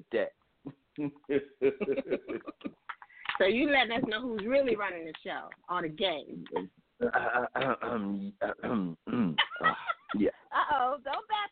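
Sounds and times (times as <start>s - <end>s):
speech: 0.0s - 2.8s, 3.4s - 11.5s
laughter: 1.3s - 3.0s, 9.4s - 10.3s
throaty vocal bursts like throat clearing: 6.5s - 9.4s.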